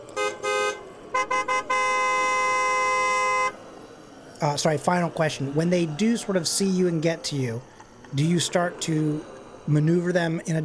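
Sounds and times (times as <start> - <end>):
car horn honking: 0.1 - 3.6
speech: 4.4 - 10.6.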